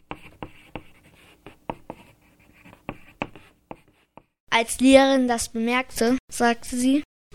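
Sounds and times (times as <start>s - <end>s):
pen or pencil scratching across a classroom table: 0.0s - 4.3s
speech: 4.6s - 7.1s.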